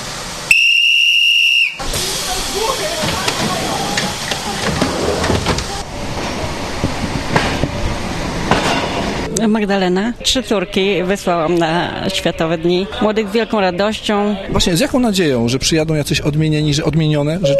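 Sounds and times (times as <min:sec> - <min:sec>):
continuous hissing and rumbling railway noise: 0:00.0 - 0:12.6
conductor's whistle signalling a train's departure: 0:00.5 - 0:01.9
speech: 0:09.4 - 0:17.5.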